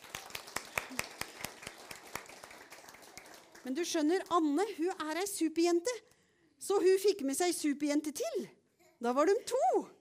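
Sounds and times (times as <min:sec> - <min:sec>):
audience clapping in steady rhythm for a young girl: 0:00.0 - 0:04.5
speech: 0:03.6 - 0:06.1, 0:06.7 - 0:09.9.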